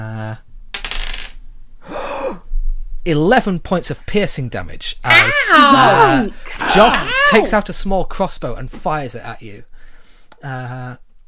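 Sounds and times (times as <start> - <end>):
dice clattering across a hard table: 0.7 - 1.4
speech: 3.1 - 9.7, 10.4 - 11.0.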